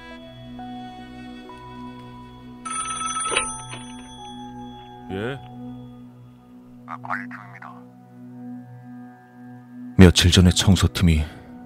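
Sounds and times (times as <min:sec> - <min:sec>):
telephone ringing with a trilling bell: 0:01.5 - 0:05.8
speech: 0:05.1 - 0:05.5, 0:06.9 - 0:08.0, 0:10.0 - 0:11.4.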